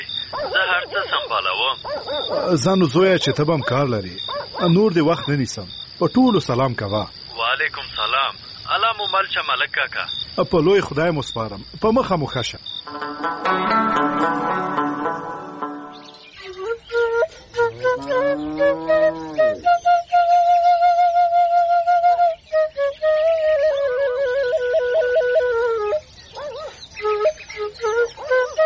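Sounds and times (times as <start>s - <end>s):
speech: 0.3s - 14.6s
whistle blown in a melodic way: 12.9s - 28.6s.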